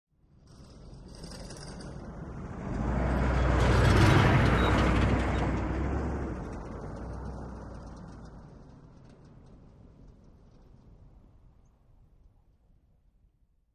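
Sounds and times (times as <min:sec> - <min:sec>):
Humvee passing by at medium speed: 0:00.5 - 0:11.3.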